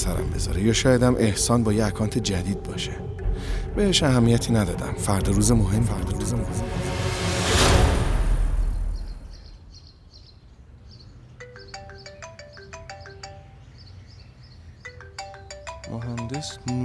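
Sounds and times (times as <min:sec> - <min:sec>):
speech: 0:00.0 - 0:07.1
whooshing burst of noise: 0:00.0 - 0:09.8
electronic phone ringtone for an incoming call: 0:11.4 - 0:13.7, 0:14.9 - 0:16.8.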